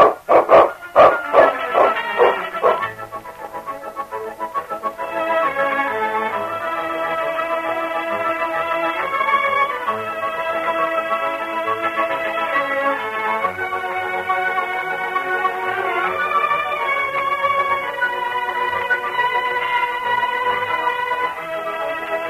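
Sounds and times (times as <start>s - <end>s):
dog barking: 0.0s - 2.9s
music: 0.0s - 22.2s.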